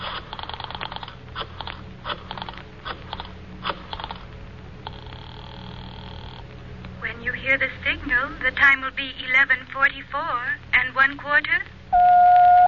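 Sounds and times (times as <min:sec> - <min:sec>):
people talking on a telephone call through an operator: 0:07.0 - 0:12.1
telephone tone: 0:11.9 - 0:12.6.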